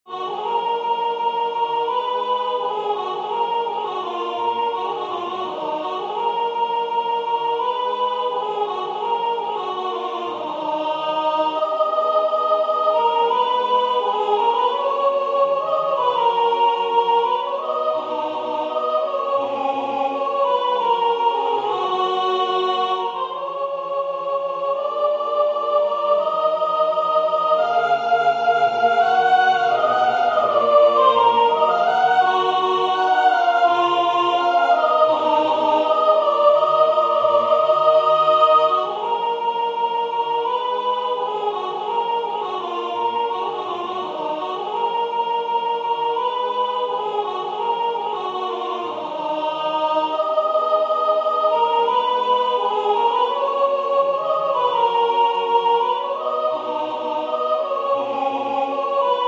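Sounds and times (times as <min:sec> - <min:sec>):
soprano singing with ornamentation: 0:00.1 - 0:59.2.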